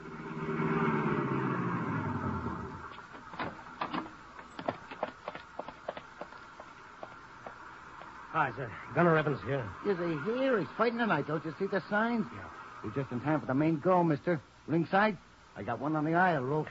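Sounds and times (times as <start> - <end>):
car engine rumbling while driven to an arena: 0.0 - 13.7
speech: 8.4 - 16.7.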